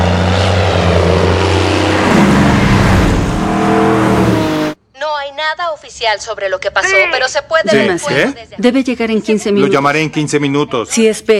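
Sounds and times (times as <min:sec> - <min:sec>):
airplane flying overhead with engine drone: 0:00.0 - 0:04.8
speech: 0:05.8 - 0:11.3.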